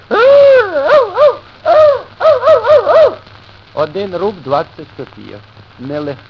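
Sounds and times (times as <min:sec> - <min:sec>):
man imitating a dog with yelps and whining barks: 0:00.1 - 0:03.2
speech: 0:03.8 - 0:06.2.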